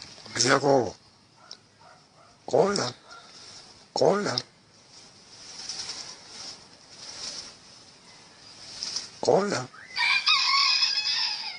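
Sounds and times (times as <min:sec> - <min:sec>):
speech: 0:00.3 - 0:01.0, 0:02.5 - 0:03.0, 0:04.0 - 0:04.5, 0:09.2 - 0:09.7
crow imitating a rooster's raspy cock-a-doodle-doo: 0:09.8 - 0:11.5.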